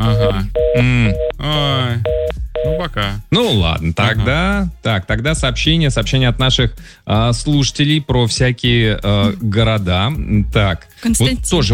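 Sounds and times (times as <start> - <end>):
telephone call signal: 0.0 - 1.4, 2.1 - 2.8
speech: 0.2 - 11.7.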